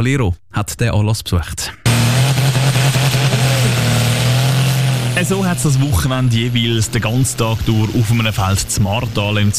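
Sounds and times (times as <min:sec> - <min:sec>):
speech: 0:00.0 - 0:01.8, 0:05.2 - 0:09.5
tractor engine revving while pulling a brake sled: 0:01.9 - 0:09.5.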